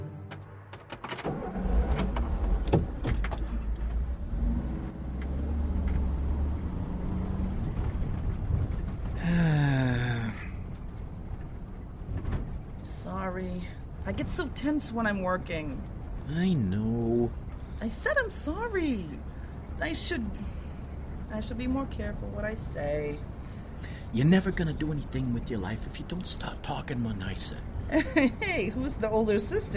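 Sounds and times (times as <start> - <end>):
car engine rumbling while pulling into a driveway: 0.2 - 29.7
car tires crunching in a driveway: 0.3 - 19.7
speech: 14.1 - 20.6, 21.3 - 29.7.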